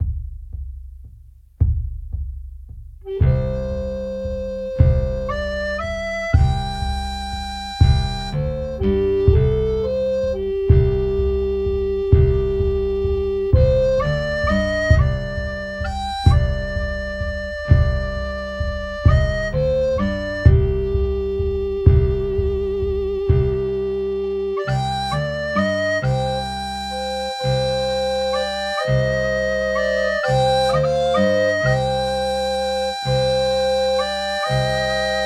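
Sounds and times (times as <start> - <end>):
flogera playing a sad song: 3.1 - 35.2.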